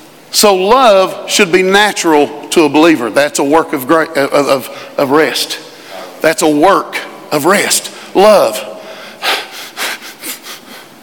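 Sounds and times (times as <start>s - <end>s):
speech: 0.4s - 8.7s
heavy hard breathing: 8.8s - 11.0s.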